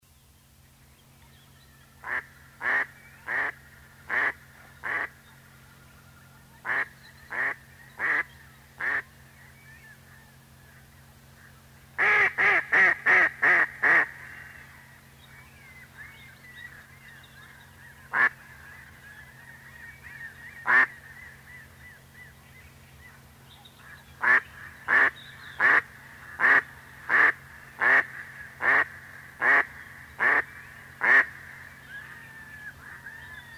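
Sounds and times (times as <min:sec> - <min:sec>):
Anas platyrhynchos calling: 0:02.0 - 0:05.4, 0:06.6 - 0:09.1, 0:12.0 - 0:14.8, 0:17.8 - 0:22.0, 0:23.8 - 0:33.5.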